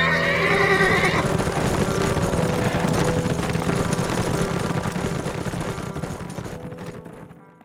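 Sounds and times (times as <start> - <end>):
horse whinnying: 0.0 - 1.6
rumble of horse hooves: 0.0 - 7.6.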